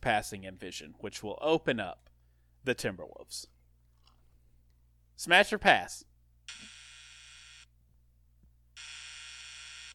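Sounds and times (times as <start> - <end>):
speech: 0.0 - 3.6, 5.2 - 6.8
game show wrong-answer buzzer: 6.5 - 7.7, 8.8 - 9.9.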